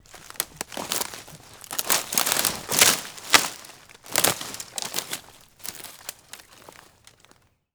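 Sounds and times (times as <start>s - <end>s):
footsteps in a forest: 0.0s - 7.4s.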